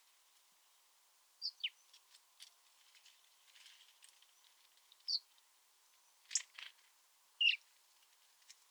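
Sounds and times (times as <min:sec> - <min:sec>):
house sparrow chirps: 0:01.4 - 0:01.9, 0:07.4 - 0:07.6.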